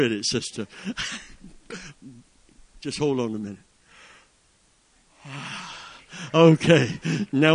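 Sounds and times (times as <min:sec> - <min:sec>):
speech: 0:00.0 - 0:02.2, 0:02.8 - 0:03.7, 0:05.2 - 0:05.6, 0:06.2 - 0:07.5
person yawning with a low groan: 0:05.2 - 0:06.0.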